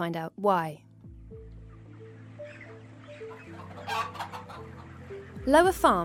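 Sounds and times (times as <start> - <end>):
speech: 0.0 - 1.4, 5.5 - 6.0
flock of chickens clucking in a chicken shed: 1.5 - 5.5.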